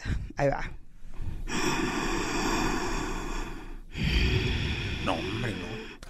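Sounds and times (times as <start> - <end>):
speech: 0.4 - 0.8
loud forceful gasping breaths of a breathing exercise: 1.4 - 6.0.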